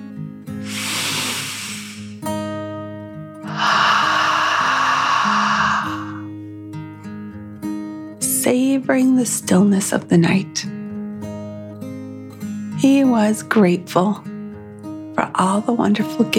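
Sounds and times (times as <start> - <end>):
deep breath in and out: 0.6 - 2.2, 3.4 - 6.6
speech: 8.5 - 10.7, 12.8 - 14.3, 15.2 - 16.3.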